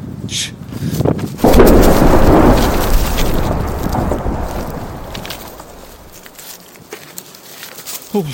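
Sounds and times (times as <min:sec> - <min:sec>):
explosion at a refinery: 0:01.4 - 0:06.4.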